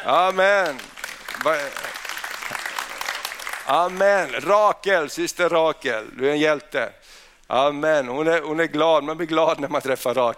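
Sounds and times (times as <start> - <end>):
speech: 0.0 - 1.9, 3.7 - 10.3
audience applauding: 0.0 - 4.4.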